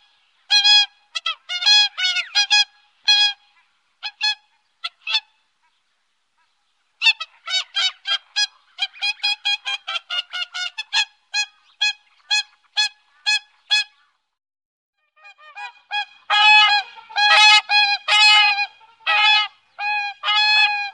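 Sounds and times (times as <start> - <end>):
whooper swan bugling honks: 0.0 - 5.8, 6.4 - 14.2, 15.1 - 20.9.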